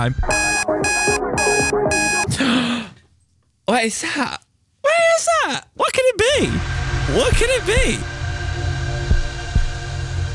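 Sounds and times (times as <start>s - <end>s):
speech: 0.0s - 0.5s, 3.7s - 4.4s, 5.2s - 8.2s
song playing from a smart speaker: 0.0s - 2.3s
small alarm clock beeping: 0.0s - 2.4s, 6.3s - 10.3s.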